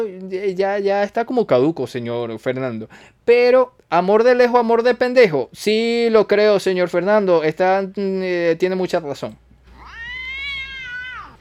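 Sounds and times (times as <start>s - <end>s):
speech: 0.0s - 9.4s
cat meowing: 9.7s - 11.4s.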